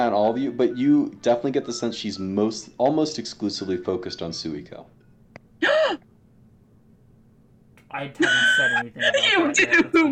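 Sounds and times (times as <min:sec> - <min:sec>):
speech: 0:00.3 - 0:05.0, 0:07.9 - 0:10.1
person gasping: 0:05.6 - 0:06.0.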